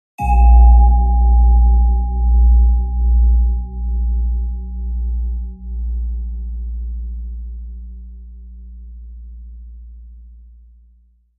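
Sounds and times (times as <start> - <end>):
bell chime with LFE reverb: 0.2 - 4.6.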